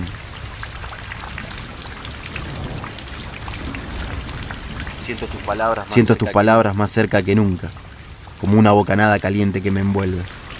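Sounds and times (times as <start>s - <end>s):
steady rain: 0.0s - 10.5s
speech: 5.1s - 7.8s, 8.4s - 10.4s.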